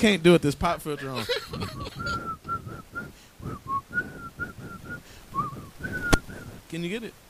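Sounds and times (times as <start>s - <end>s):
speech: 0.0s - 1.8s, 6.7s - 7.2s
laughter: 0.9s - 2.8s
soft low rumble: 1.4s - 6.7s
person whistling a short lilting tune: 1.7s - 6.6s.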